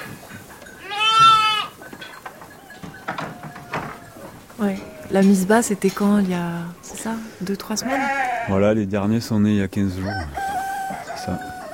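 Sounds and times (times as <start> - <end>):
scattered farmyard noises: 0.0 - 11.7
sheep bleating on a farm: 0.8 - 1.8, 7.7 - 8.7
speech: 4.6 - 10.4, 11.2 - 11.5.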